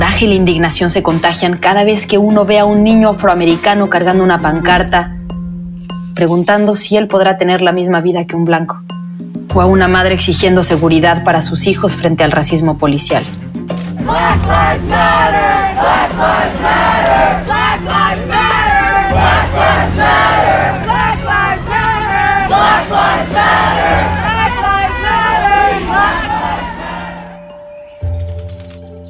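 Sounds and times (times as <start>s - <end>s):
speech: 0.1s - 5.2s, 6.2s - 8.9s, 9.5s - 13.5s, 14.1s - 18.3s
large protest march crowd chanting slogans: 14.0s - 27.4s
low droning hum: 14.1s - 27.3s.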